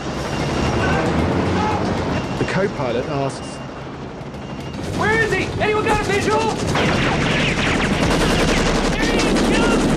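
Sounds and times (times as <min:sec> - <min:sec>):
constant loud roar: 0:00.0 - 0:09.9
speech: 0:02.6 - 0:03.6, 0:05.0 - 0:08.4
rapid gunfire traded between a helicopter's gunman and attackers: 0:04.8 - 0:09.9.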